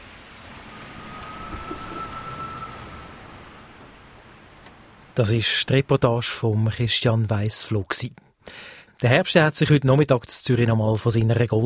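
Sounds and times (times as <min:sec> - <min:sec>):
steady rain pouring outdoors spattering on surfaces: 0:00.0 - 0:05.8
faint whistle-like tone: 0:00.6 - 0:04.2
speech: 0:05.2 - 0:11.6.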